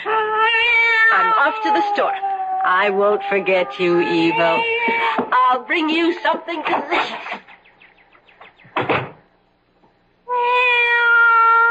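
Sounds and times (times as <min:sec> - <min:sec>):
cat meowing: 0:00.0 - 0:05.2, 0:10.3 - 0:11.6
speech: 0:01.5 - 0:07.5
rustling thump: 0:08.6 - 0:09.2.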